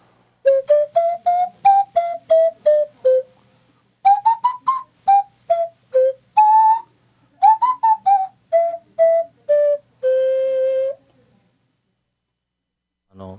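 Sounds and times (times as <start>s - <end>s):
wooden nose flute playing a lively tune: 0.4s - 3.4s, 4.0s - 11.0s.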